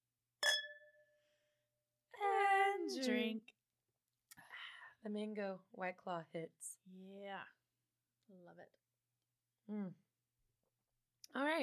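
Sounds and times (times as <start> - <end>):
wine glasses clinking in a toast: 0.4 - 1.0
speech: 2.9 - 3.6, 5.0 - 7.6, 8.3 - 8.8, 9.7 - 10.0, 11.3 - 11.6.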